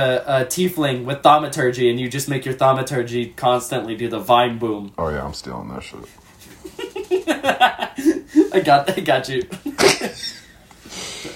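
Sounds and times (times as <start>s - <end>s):
speech: 0.0s - 6.2s, 7.4s - 10.0s
laughter: 6.5s - 10.6s
person coughing: 9.8s - 10.2s.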